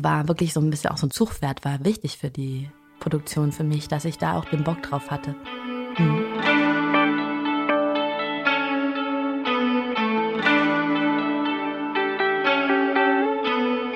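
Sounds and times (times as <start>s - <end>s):
speech: 0.0s - 6.5s
three layered electric guitar tracks looped with a loop station: 4.2s - 13.9s.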